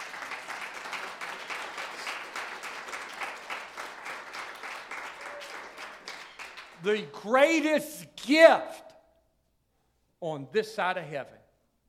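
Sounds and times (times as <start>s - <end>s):
audience clapping: 0.0s - 7.2s
speech: 6.8s - 8.8s, 10.2s - 11.4s.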